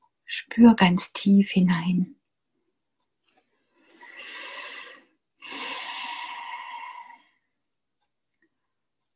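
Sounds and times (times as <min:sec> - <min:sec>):
speech: 0:00.3 - 0:02.2
deep breathing during a guided chakra meditation: 0:03.6 - 0:07.5.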